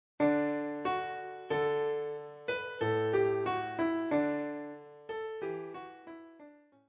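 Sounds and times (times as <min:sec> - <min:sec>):
piano playing a children's song: 0:00.2 - 0:06.8.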